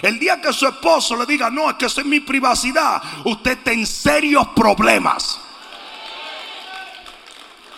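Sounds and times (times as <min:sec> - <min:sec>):
speech: 0:00.0 - 0:05.4
two or three people clapping: 0:05.4 - 0:07.7.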